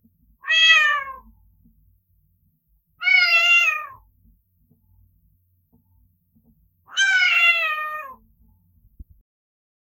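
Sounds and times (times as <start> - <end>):
kitten meowing: 0.4 - 1.2, 3.0 - 4.0, 6.9 - 8.2.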